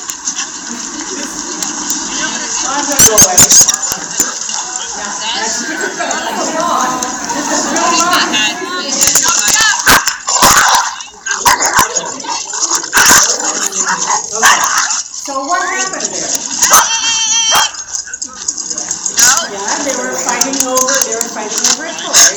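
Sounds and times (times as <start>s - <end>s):
laughter: 0.0s - 22.3s
speech: 2.8s - 4.3s
dog barking: 9.8s - 15.0s, 16.6s - 17.8s.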